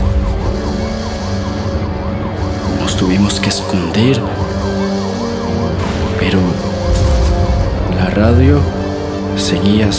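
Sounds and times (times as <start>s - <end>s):
sirens wailing: 0.0s - 9.9s
speech: 3.1s - 4.8s, 8.2s - 8.8s, 9.4s - 9.9s.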